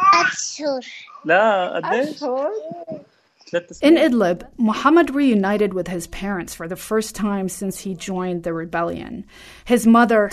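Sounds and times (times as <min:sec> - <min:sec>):
3-year-old girl babbling: 0:00.0 - 0:03.1
speech: 0:00.6 - 0:10.3.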